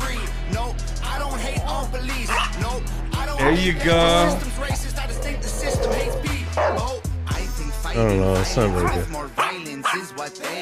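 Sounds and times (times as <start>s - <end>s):
music: 0.0s - 10.5s
speech: 1.9s - 4.9s, 8.0s - 10.5s
small dog barking: 2.3s - 2.6s, 5.1s - 6.9s, 8.8s - 10.1s.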